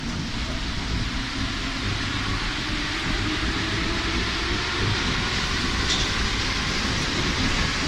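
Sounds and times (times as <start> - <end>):
metro train accelerating: 0.0 - 7.8.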